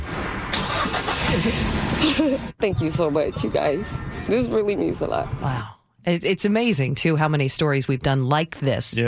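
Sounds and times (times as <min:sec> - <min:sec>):
car engine cranking and starting: 0:00.0 - 0:02.6
speech: 0:01.4 - 0:09.0.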